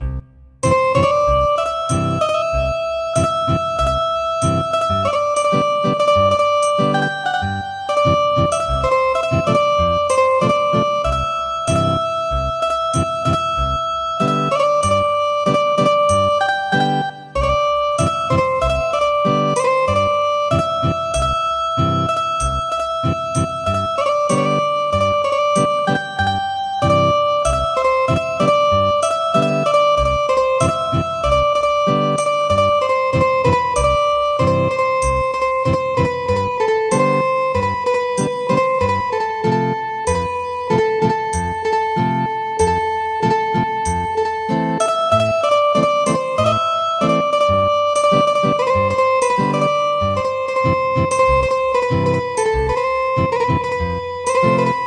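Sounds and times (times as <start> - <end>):
Yemeni ethnic song on guitar: 0.6 - 54.8.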